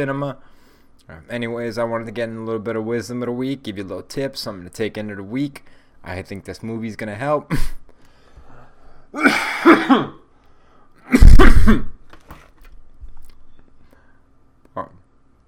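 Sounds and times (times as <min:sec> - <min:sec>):
speech: 0:00.0 - 0:07.8, 0:09.1 - 0:10.2, 0:11.4 - 0:11.9
person breathing: 0:00.4 - 0:01.0, 0:08.0 - 0:09.2, 0:10.4 - 0:11.0, 0:13.8 - 0:14.3
person coughing heavily after smoking: 0:09.2 - 0:10.2, 0:11.1 - 0:12.0.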